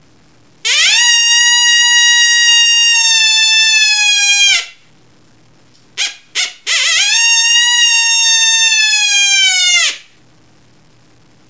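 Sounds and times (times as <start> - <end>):
adult female coyote interrogation call: 0.7 - 4.8, 6.0 - 10.1.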